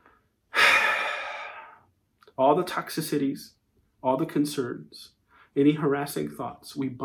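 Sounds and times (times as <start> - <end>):
long slow exhale during a guided breathing exercise: 0.0 - 1.8
speech: 2.4 - 7.0.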